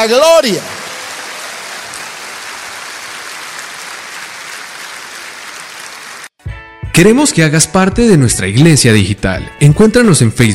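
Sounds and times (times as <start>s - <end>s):
speech: 0.0s - 0.8s, 7.0s - 10.5s
audience applauding: 0.0s - 6.4s.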